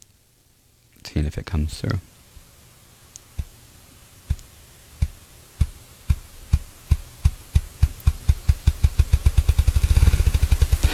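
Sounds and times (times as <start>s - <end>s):
speech: 1.2s - 2.1s
bird drumming with its wings: 3.2s - 3.6s, 4.2s - 10.9s.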